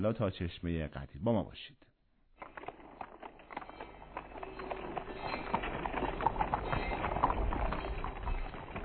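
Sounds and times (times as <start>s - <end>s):
speech: 0.0s - 2.6s
caravan animals' hooves clopping: 2.4s - 8.8s
faint caravan animal bells ringing: 3.2s - 8.8s.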